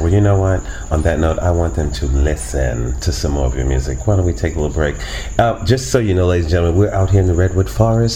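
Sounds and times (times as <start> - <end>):
crickets chirping in a forest: 0.0 - 8.1
speech: 0.1 - 8.1.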